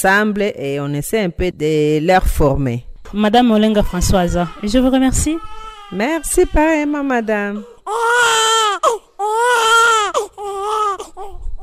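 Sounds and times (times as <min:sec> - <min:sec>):
speech: 0:00.0 - 0:11.4
newborn babies crying in a maternity ward: 0:03.8 - 0:11.6.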